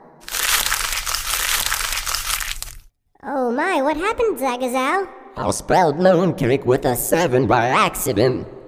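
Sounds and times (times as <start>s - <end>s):
paper being crumpled: 0.2s - 2.9s
speech: 3.2s - 8.6s.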